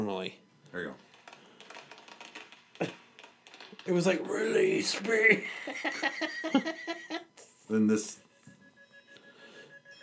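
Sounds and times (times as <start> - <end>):
speech: 0.0 - 1.0, 3.9 - 8.2
laughter: 5.4 - 7.3
fire alarm beeping: 8.2 - 10.0.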